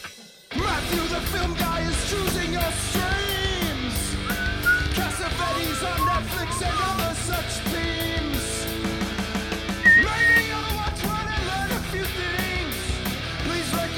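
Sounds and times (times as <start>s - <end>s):
busy full music track: 0.7s - 13.8s
person whistling along to a tune: 4.1s - 8.0s, 9.8s - 10.6s.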